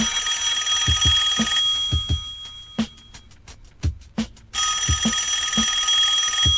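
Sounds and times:
telephone ringing in an office: 0.0s - 3.2s, 4.6s - 6.5s.

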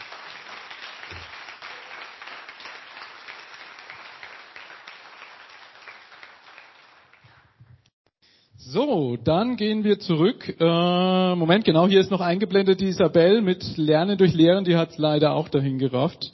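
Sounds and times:
audience applause closing a talk at a conference: 0.0s - 7.6s
speech: 8.6s - 16.3s.

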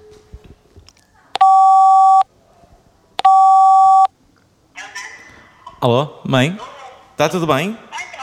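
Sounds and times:
phone ringback tone before answer: 1.4s - 2.2s, 3.2s - 4.1s
speech: 5.8s - 7.8s.

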